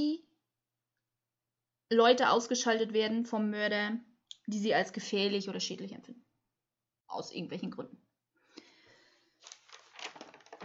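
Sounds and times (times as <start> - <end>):
speech: 1.9 - 6.2, 7.1 - 8.0
paper page being turned: 9.4 - 10.6.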